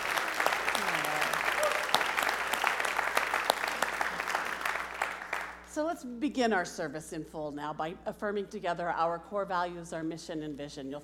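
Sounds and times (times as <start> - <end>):
roomful of people applauding: 0.0 - 5.7
speech: 5.8 - 11.0.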